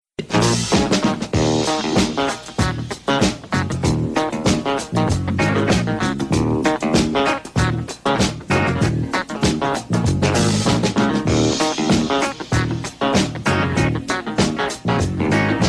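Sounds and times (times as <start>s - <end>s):
jazz beat ringtone: 0.2s - 15.6s.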